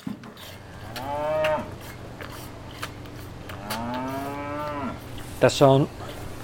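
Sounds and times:
bull calf mooing: 0.8s - 1.8s, 3.5s - 5.0s
speech: 5.4s - 6.0s.

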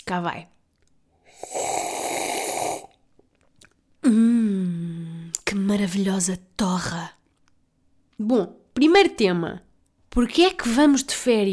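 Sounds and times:
speech: 0.1s - 0.6s, 5.6s - 7.2s, 8.2s - 11.5s
loud slurp of coffee: 1.2s - 3.0s.

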